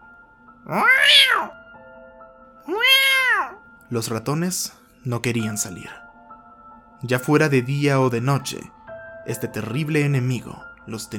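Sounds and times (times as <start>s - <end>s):
speech: 0.6s - 1.6s, 3.9s - 6.0s, 7.0s - 11.1s
cat meowing: 0.7s - 1.6s, 2.7s - 3.6s.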